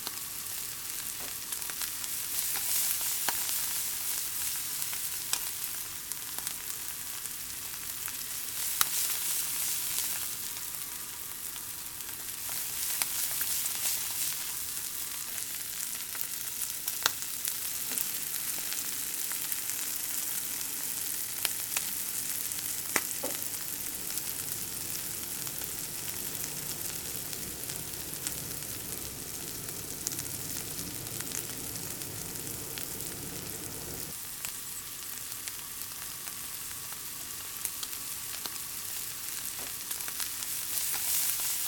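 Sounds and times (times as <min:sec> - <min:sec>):
corn sizzling while stir-fried in a frying pan: 0:00.0 - 0:41.6
low rumble: 0:24.1 - 0:34.1.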